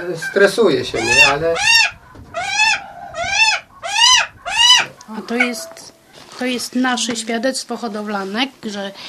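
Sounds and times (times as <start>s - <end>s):
speech: 0.1s - 1.9s, 5.3s - 5.8s, 6.4s - 9.0s
female hawk calling in courtship: 0.2s - 6.2s.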